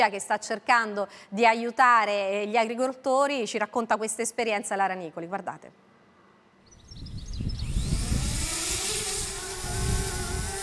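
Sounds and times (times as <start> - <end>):
speech: 0.0 - 5.9
agricultural drone motors buzzing: 6.8 - 10.6.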